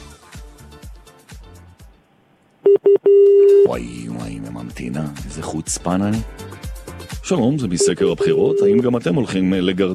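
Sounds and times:
electronic telephone line beeps as a call is dialed: 0:02.6 - 0:03.8, 0:07.8 - 0:09.0
murky sound: 0:03.5 - 0:09.9
speech: 0:03.8 - 0:06.4, 0:07.3 - 0:09.9.

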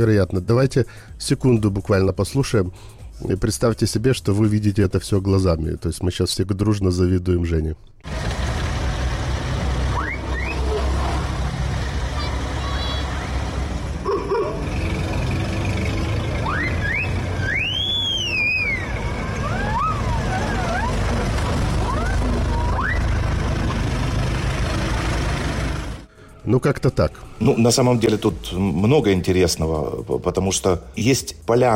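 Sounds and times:
speech: 0:00.0 - 0:08.3, 0:26.5 - 0:31.7
century-old antique car engines idling: 0:08.0 - 0:26.4.

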